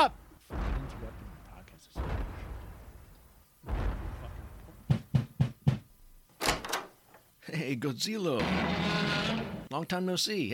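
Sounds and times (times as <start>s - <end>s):
speech: 0.0s - 0.2s, 7.6s - 10.5s
noise bursts: 0.0s - 5.5s
firm knocking on a door: 4.9s - 5.9s.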